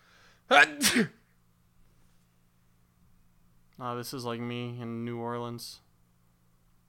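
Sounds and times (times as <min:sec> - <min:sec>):
person sneezing into a microphone: 0:00.5 - 0:01.2
speech: 0:00.5 - 0:01.2, 0:03.8 - 0:05.9.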